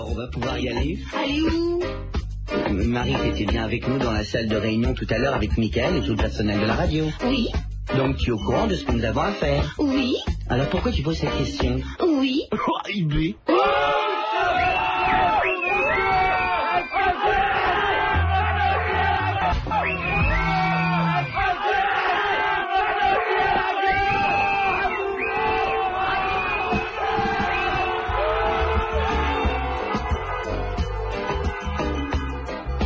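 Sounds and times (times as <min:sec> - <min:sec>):
speech: 0:00.1 - 0:13.5
crowd of people yelling and shouting in a traffic jam: 0:13.5 - 0:32.8.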